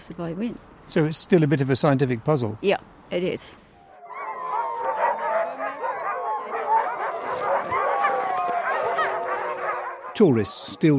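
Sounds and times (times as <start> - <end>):
speech: 0.0 - 3.6, 10.2 - 10.9
pack of sled dogs barking, yipping and howling: 3.8 - 10.9.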